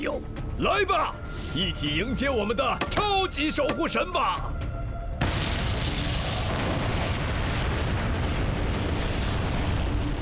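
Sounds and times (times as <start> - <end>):
speech: 0.0 - 4.6
deep explosion at an Easter Island volcano: 5.2 - 10.1
dense crackling volcanic debris noise: 5.2 - 10.1
volcanic eruption roaring rumble at an Easter Island volcano: 5.2 - 10.1.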